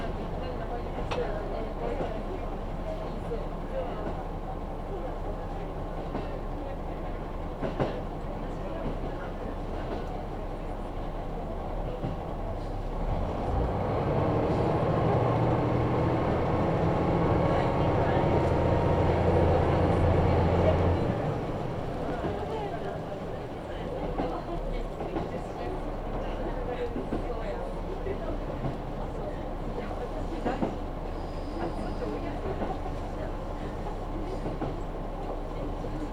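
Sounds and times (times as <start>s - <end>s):
faint voices: 0.0s - 36.1s
train rumbling along a local line: 0.0s - 36.1s.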